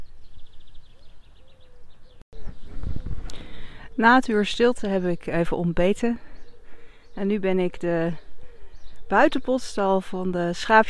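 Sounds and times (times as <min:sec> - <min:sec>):
small birds chirping: 0:00.0 - 0:10.8
pigeons cooing: 0:00.9 - 0:04.0, 0:06.2 - 0:07.2, 0:08.2 - 0:09.1
speech: 0:04.0 - 0:06.3, 0:07.2 - 0:08.2, 0:09.1 - 0:10.8.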